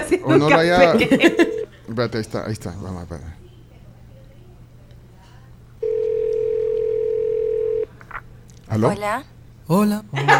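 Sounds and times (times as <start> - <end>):
laughter: 0.0 - 1.9, 10.2 - 10.3
speech: 0.1 - 3.4, 8.7 - 10.3
telephone dial tone while redialing a call: 5.8 - 7.9.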